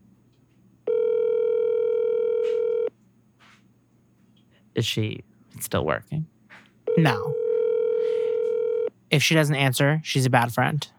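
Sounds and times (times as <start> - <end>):
telephone dial tone: 0.9 - 2.9, 6.9 - 8.9
speech: 4.8 - 6.3, 7.0 - 7.4, 9.1 - 10.9.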